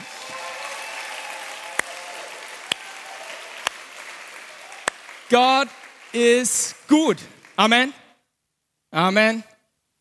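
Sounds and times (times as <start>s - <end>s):
crowd applauding in a large room: 0.0s - 7.9s
speech: 5.3s - 8.0s, 8.9s - 9.5s.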